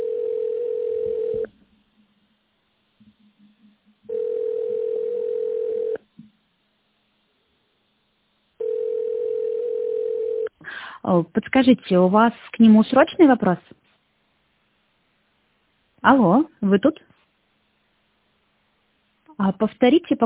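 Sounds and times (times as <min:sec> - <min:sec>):
telephone ringback tone of an unanswered phone call: 0:00.0 - 0:01.5, 0:04.1 - 0:06.0, 0:08.6 - 0:10.5
speech: 0:11.0 - 0:13.8, 0:16.0 - 0:17.1, 0:19.4 - 0:20.2.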